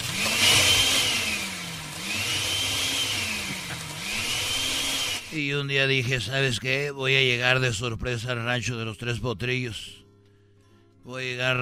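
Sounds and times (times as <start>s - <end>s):
electric blender whirring: 0.0s - 5.4s
speech: 5.4s - 10.0s, 11.1s - 11.6s.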